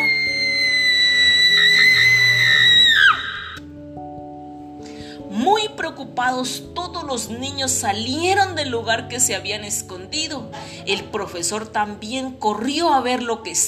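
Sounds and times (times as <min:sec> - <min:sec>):
short wavering cries: 0:00.0 - 0:03.6
terrifying piercing scream: 0:00.0 - 0:03.6
music: 0:00.0 - 0:13.6
speech: 0:06.2 - 0:13.6.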